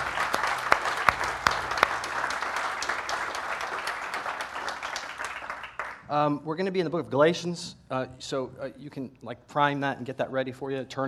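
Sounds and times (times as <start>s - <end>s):
church audience applauding: 0.0s - 6.3s
speech: 6.1s - 11.0s.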